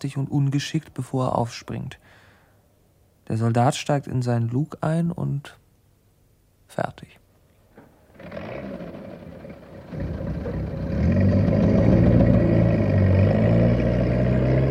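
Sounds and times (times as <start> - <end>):
speech: 0.0 - 2.2, 3.3 - 5.6, 6.7 - 7.2
tank engine growling as the tank drives off onto the road: 8.1 - 14.7.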